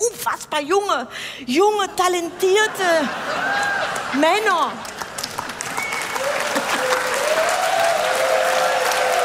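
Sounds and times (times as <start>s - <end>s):
speech: 0.0s - 4.9s
laughter: 2.2s - 5.2s, 6.3s - 7.2s
large audience applause: 4.8s - 9.2s
faint whistles and cheers from audience: 5.7s - 9.2s.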